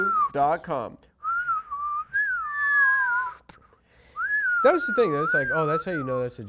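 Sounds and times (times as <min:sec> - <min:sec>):
person whistling a falling-bomb imitation: 0:00.0 - 0:00.4, 0:01.2 - 0:03.5, 0:04.2 - 0:06.2
speech: 0:00.4 - 0:01.1, 0:04.6 - 0:06.4.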